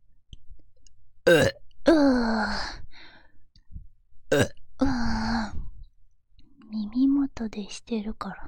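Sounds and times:
person burping loudly: 1.2 - 2.2, 4.3 - 4.6
soft breathy sounds: 1.9 - 3.4, 4.8 - 5.8
speech: 7.5 - 8.4.

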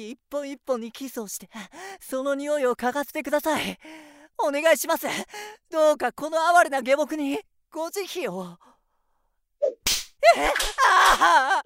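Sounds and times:
speech: 0.0 - 8.7, 9.6 - 11.6
whip cracks and lashes: 9.9 - 10.8.

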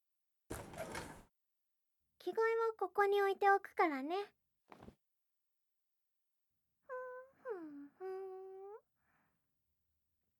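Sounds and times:
sliding door opening with a soft rumbling scrape: 0.5 - 1.2
speech: 2.2 - 4.9.

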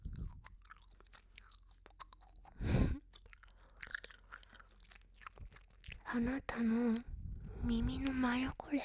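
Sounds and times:
gum being chewed loudly right next to the ear: 0.0 - 6.1
speech: 6.1 - 8.8.

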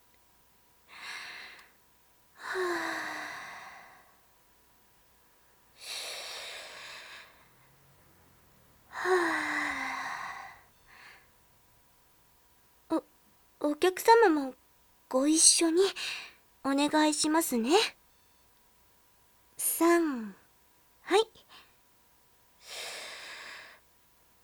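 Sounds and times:
person taking slow deep breaths: 2.4 - 4.2, 5.8 - 7.6, 8.9 - 11.3, 22.6 - 23.8
speech: 13.9 - 18.0, 19.6 - 20.4, 21.1 - 21.4.

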